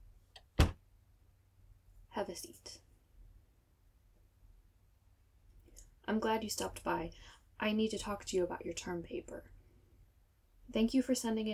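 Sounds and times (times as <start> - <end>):
door closing: 0.4 - 0.8
speech: 2.2 - 2.9, 6.1 - 9.5, 10.7 - 11.5.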